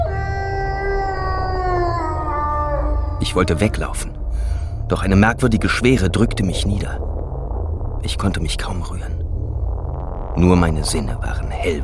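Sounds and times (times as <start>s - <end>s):
growl swelling into a long loud howl: 0.0s - 4.2s
low rumbling background: 0.0s - 11.8s
speech: 3.2s - 7.2s, 8.0s - 9.2s, 10.4s - 11.8s.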